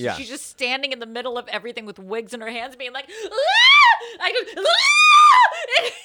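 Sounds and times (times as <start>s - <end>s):
speech: 0.0s - 6.0s
person imitating a panicked scream: 3.4s - 4.0s, 4.6s - 5.8s.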